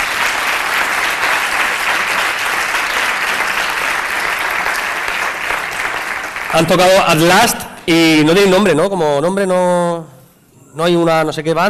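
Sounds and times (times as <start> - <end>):
loud audience applause at an awards event: 0.0 - 7.4
speech: 6.6 - 10.1, 10.8 - 11.6.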